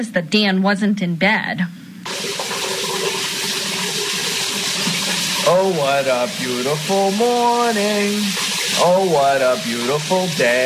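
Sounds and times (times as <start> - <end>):
speech: 0.0 - 1.8, 5.5 - 10.6
shower running in a bathroom: 2.1 - 10.6.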